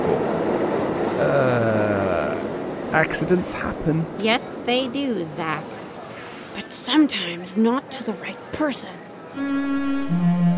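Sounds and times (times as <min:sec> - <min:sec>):
train rolling along the rails: 0:00.0 - 0:05.8
speech: 0:03.0 - 0:05.8, 0:06.6 - 0:10.5.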